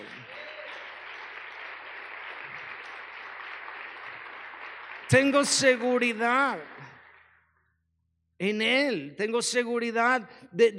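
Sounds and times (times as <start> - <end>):
dense applause from a large crowd: 0.0 - 7.4
speech: 5.1 - 6.8, 8.4 - 10.7.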